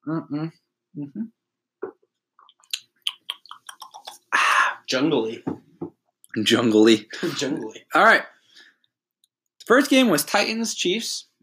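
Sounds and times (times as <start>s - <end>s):
murmured vocal sound: 0.0s - 1.3s
speech: 0.1s - 1.4s, 4.9s - 5.6s, 6.4s - 8.3s, 9.7s - 11.3s
mouth clicks and lip smacks: 1.8s - 4.4s
swallow: 1.9s - 4.4s.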